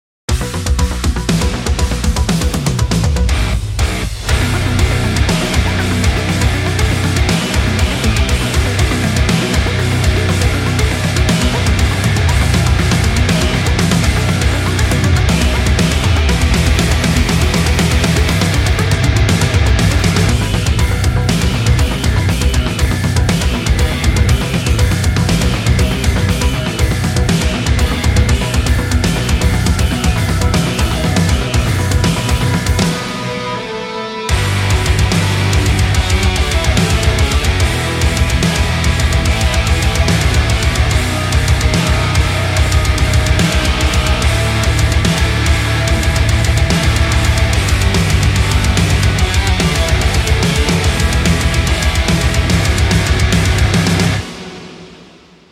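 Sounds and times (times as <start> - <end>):
drum kit: 0.3 - 55.4.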